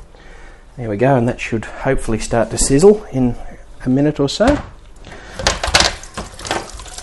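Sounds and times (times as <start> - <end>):
speech: 0.8 - 4.7
tap water running as a chopping board is rinsed in a kitchen: 5.7 - 7.0.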